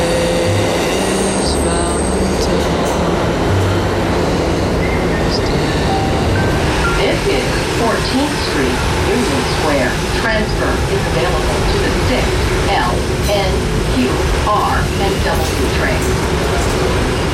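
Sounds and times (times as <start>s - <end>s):
indistinct murmur of voices: 0.0s - 17.3s
subway train rumbling through a metro station: 0.0s - 17.3s.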